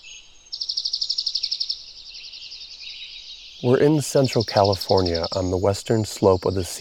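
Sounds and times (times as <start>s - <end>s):
bird trilling in a sequoia forest in the Sierra Nevada: 0.0s - 6.7s
speech: 3.6s - 6.7s.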